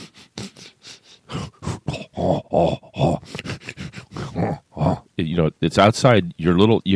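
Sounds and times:
person imitating a bear sniffing outside a tent at a campsite: 0:00.0 - 0:05.1
speech: 0:05.2 - 0:06.9.

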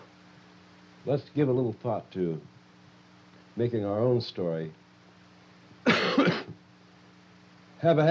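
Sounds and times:
speech: 0:01.0 - 0:02.6, 0:03.6 - 0:04.8, 0:07.8 - 0:08.0
harsh coughing: 0:05.9 - 0:06.6.

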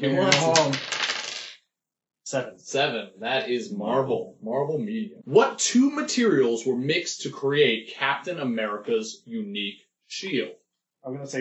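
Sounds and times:
speech: 0:00.0 - 0:01.0, 0:02.3 - 0:11.4
dice clattering across a hard surface: 0:00.2 - 0:01.6.

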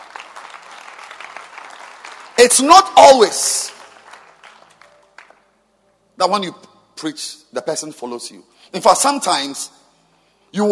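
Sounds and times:
crowd clapping: 0:00.0 - 0:05.5
speech: 0:02.4 - 0:03.7, 0:06.2 - 0:09.8.

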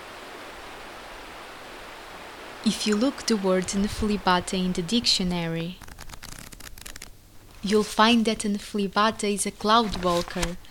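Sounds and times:
river water flowing: 0:00.0 - 0:05.6
speech: 0:02.6 - 0:05.8, 0:07.6 - 0:10.6.

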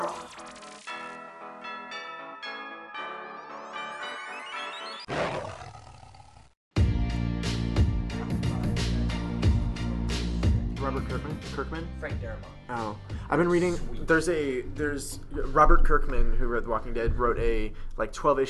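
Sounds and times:
tiger roaring: 0:05.1 - 0:06.4
dense driving burst of music: 0:06.8 - 0:15.5
speech: 0:10.9 - 0:18.4.

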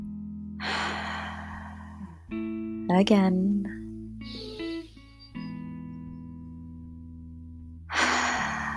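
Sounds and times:
slow deep breath drawn in through the nose: 0:00.6 - 0:02.3, 0:07.9 - 0:08.7
speech: 0:02.9 - 0:03.8.

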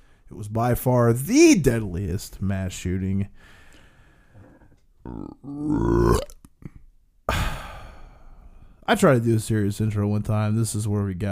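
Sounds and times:
speech: 0:00.3 - 0:03.6, 0:05.0 - 0:06.4, 0:08.9 - 0:11.3
loud belch: 0:05.0 - 0:06.8.

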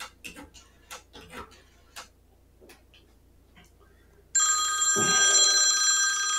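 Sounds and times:
telephone bell ringing: 0:04.4 - 0:06.3.

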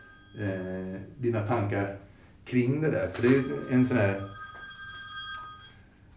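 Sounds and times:
telephone ringing with an electronic tone: 0:00.0 - 0:01.6, 0:03.0 - 0:06.0
speech: 0:00.4 - 0:04.4.

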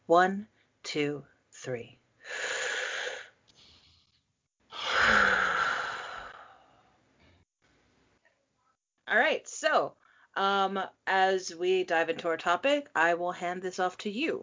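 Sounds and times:
speech: 0:00.1 - 0:02.6, 0:09.1 - 0:14.4
person breathing in and out deeply: 0:02.2 - 0:04.0, 0:04.7 - 0:07.0.

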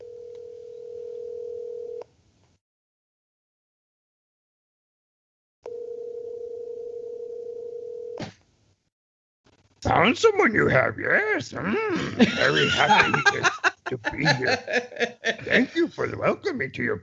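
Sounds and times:
telephone line tones after a speed-dialed call: 0:00.0 - 0:02.0, 0:05.7 - 0:08.2
speech: 0:09.8 - 0:17.0
laughter: 0:11.7 - 0:16.4.

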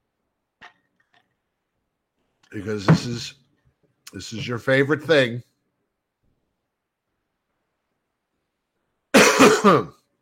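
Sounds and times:
speech: 0:02.5 - 0:03.4, 0:04.1 - 0:05.5, 0:09.6 - 0:10.0
throat clearing and coughing: 0:09.1 - 0:10.1.

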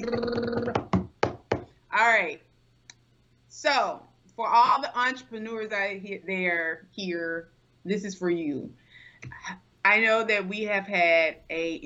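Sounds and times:
speech: 0:00.0 - 0:00.4, 0:02.0 - 0:02.5, 0:03.5 - 0:11.8
hand taps on a hard surface as an improvised drum roll: 0:00.4 - 0:01.7.

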